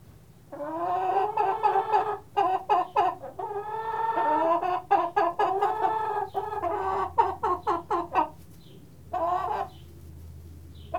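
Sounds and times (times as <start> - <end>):
chicken clucking: 0.5 - 10.0, 10.8 - 10.9.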